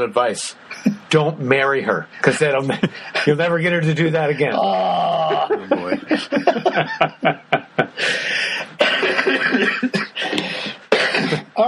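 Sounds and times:
speech: 0:00.0 - 0:10.5
laughter: 0:04.5 - 0:11.6
loud harsh rasping coughing fit: 0:08.8 - 0:11.6.

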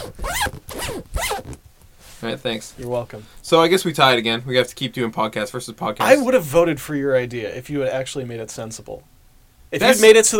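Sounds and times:
zipper on a computer bag being zipped shut: 0:00.0 - 0:01.6
speech: 0:02.2 - 0:09.1, 0:09.7 - 0:10.3.

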